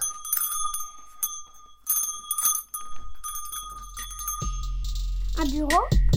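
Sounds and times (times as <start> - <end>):
small bell rung in a bedroom: 0.0 - 6.0
speech: 5.4 - 6.0.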